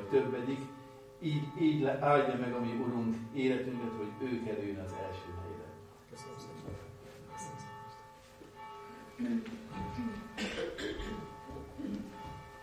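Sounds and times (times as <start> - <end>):
church bell ringing: 0.0 - 12.6
speech: 0.1 - 7.7, 9.2 - 11.2
people coughing and clearing their throats in a quiet hall: 9.8 - 12.4.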